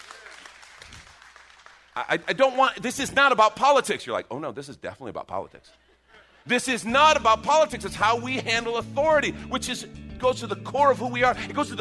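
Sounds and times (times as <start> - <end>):
crowd clapping and cheering: 0.0 - 2.8
speech: 2.0 - 11.7.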